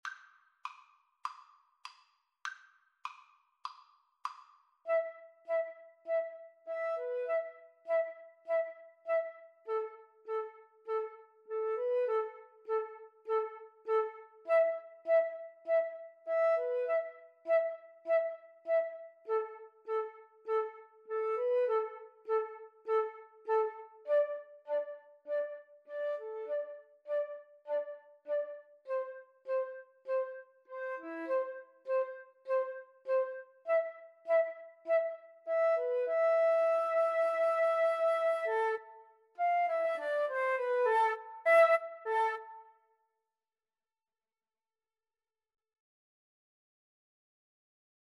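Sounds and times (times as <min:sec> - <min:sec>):
flute duet: 0:04.9 - 0:42.9.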